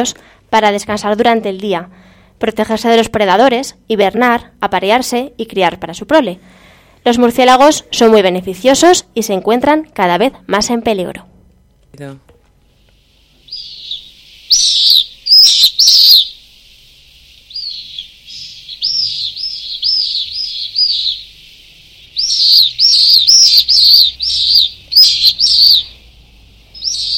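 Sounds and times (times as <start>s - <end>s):
speech: 0.0s - 11.3s, 11.9s - 12.3s
pallid swifts calling from a colony nesting at a fire station in Zaragoza: 13.5s - 27.1s.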